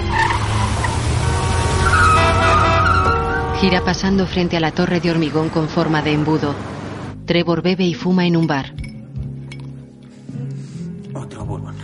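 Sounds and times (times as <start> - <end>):
car tires screeching while swerving through a red light: 0.0 - 7.2
car engine noise: 0.0 - 7.3
speech: 3.6 - 8.9.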